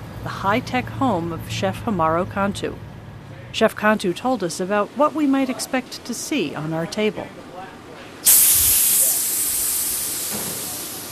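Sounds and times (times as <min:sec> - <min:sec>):
speech: 0:00.2 - 0:02.9, 0:03.6 - 0:07.5
carbon dioxide at 130 psi releasing from a fermentation chamber: 0:08.2 - 0:11.1.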